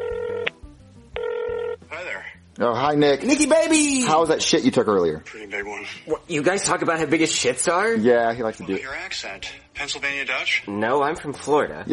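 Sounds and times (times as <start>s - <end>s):
telephone ringback tone as a call is placed: 0.0s - 0.5s, 1.2s - 1.8s
speech: 2.6s - 11.9s.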